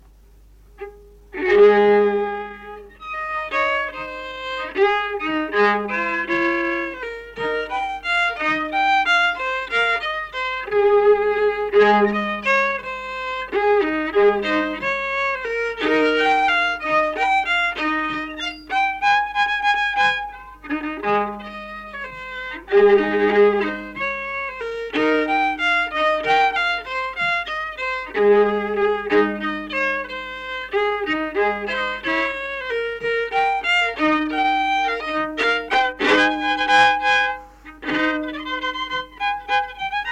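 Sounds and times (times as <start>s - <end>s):
violin playing a folk waltz: 0.0s - 40.0s.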